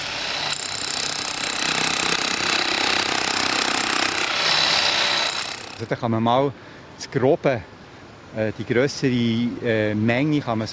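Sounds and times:
pneumatic chisel hammer carving stone: 0.0s - 5.9s
speech: 5.8s - 7.7s, 8.3s - 10.7s.

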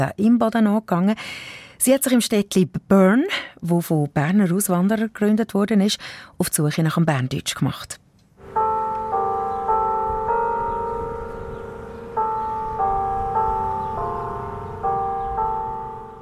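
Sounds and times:
speech: 0.0s - 8.0s
clock tower carillon chiming a melody over loudspeaker: 8.4s - 16.2s.

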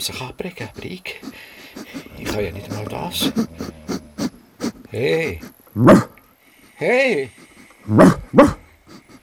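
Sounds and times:
speech: 0.0s - 3.9s, 4.9s - 6.1s, 6.8s - 8.6s
dog barking at a window: 5.8s - 6.2s, 7.9s - 8.7s.

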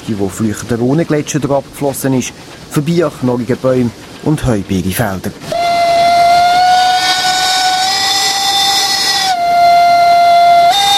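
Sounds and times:
speech: 0.1s - 5.6s
steam locomotive whistle on a mountain railway blowing: 5.5s - 10.9s.

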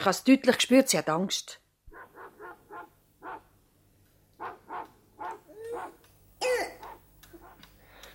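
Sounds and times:
speech: 0.0s - 1.6s
child coughing in harsh barking bursts: 5.6s - 7.0s.

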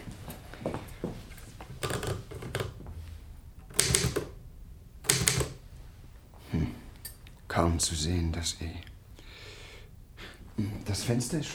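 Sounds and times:
mechanical typewriter clatter: 1.8s - 2.8s, 3.6s - 4.4s, 5.0s - 5.6s
speech: 7.6s - 8.9s, 10.6s - 11.5s.

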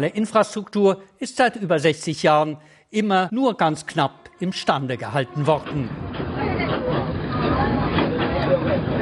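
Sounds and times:
speech: 0.0s - 6.2s
indistinct passenger chatter murmuring: 5.6s - 9.0s
train hauled by a diesel locomotive rumbling along with engine and wheel drone: 5.6s - 9.0s.

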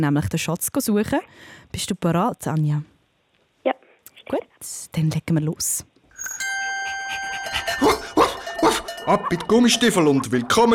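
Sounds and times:
speech: 0.0s - 2.9s, 3.6s - 6.4s, 9.0s - 10.7s
ringing bell-like chime: 6.2s - 10.7s.

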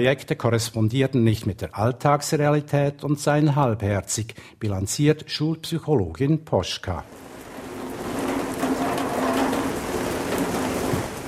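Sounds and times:
speech: 0.0s - 7.3s
steady rain drumming on a porch roof: 7.1s - 11.2s.

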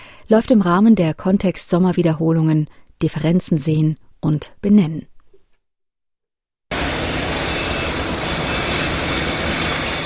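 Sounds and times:
speech: 0.3s - 5.1s
construction noise at a train station: 6.7s - 10.0s
rumbling machinery at a train station: 6.7s - 10.0s.

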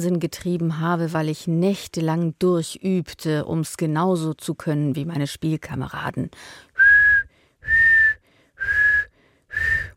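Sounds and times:
speech: 0.0s - 6.7s
person whistling sustained notes: 6.8s - 9.9s.

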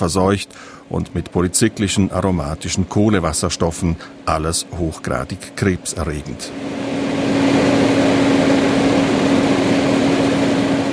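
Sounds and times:
speech: 0.0s - 7.9s
pump and compressor motors droning: 0.0s - 10.9s.

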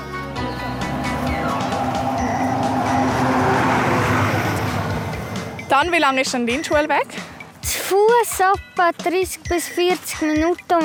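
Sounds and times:
bus rumbling past on a street: 0.0s - 7.6s
faint high whine of a bus: 0.1s - 6.6s
speech: 5.8s - 10.8s.

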